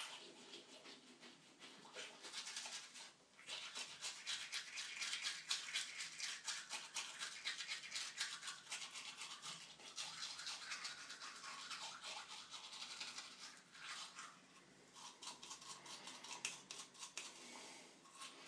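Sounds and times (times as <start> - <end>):
manual toothbrush scrubbing teeth: 0.0 - 18.4.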